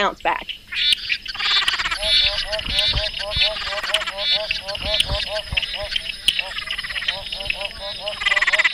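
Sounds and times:
speech: 0:00.0 - 0:00.9, 0:02.5 - 0:08.6
dense chorus of frogs calling: 0:00.0 - 0:08.7
steady hum: 0:00.0 - 0:08.7
low thumps: 0:01.6 - 0:08.2.

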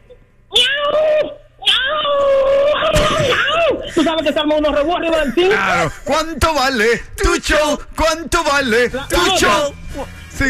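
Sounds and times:
person imitating a cat in heat yowling: 0:00.5 - 0:03.8
speech: 0:04.1 - 0:10.4.

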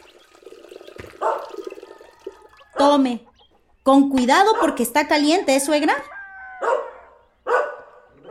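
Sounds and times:
dog barking: 0:01.2 - 0:01.6, 0:04.5 - 0:04.8, 0:06.1 - 0:08.2
speech: 0:02.8 - 0:03.3, 0:03.9 - 0:06.1.

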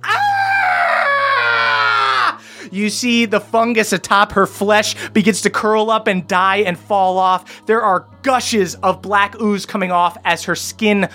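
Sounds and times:
human voice performing a female monster's scream: 0:00.0 - 0:02.4
speech: 0:02.7 - 0:11.1.

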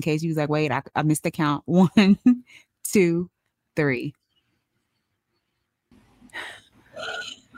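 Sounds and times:
speech: 0:00.0 - 0:04.2
group of people inhaling and exhaling deeply in a guided breathing exercise: 0:06.3 - 0:07.3.

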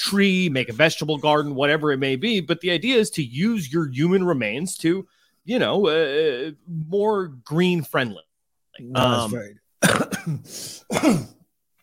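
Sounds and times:
speech: 0:00.0 - 0:11.4
person clearing throat hard to dislodge something stuck: 0:09.2 - 0:11.4.

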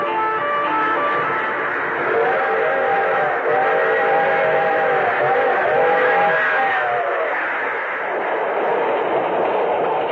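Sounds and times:
freight train whistle blast: 0:00.0 - 0:07.2
freight cars rumbling across farmland: 0:00.0 - 0:10.1.

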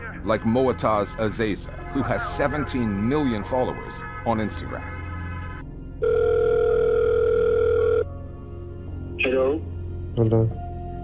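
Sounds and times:
speech: 0:00.2 - 0:04.9, 0:09.2 - 0:10.6
telephone ringing with a steady electronic tone: 0:06.0 - 0:08.1.

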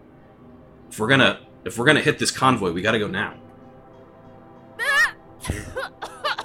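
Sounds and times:
speech: 0:00.9 - 0:03.4
person giving a theatrical throaty cough: 0:05.4 - 0:06.4.

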